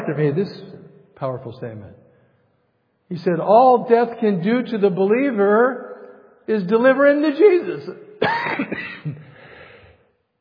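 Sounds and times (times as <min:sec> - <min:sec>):
speech: 0:00.1 - 0:02.0, 0:03.1 - 0:05.9, 0:06.5 - 0:09.3
person coughing with a lingering cough: 0:08.2 - 0:09.6.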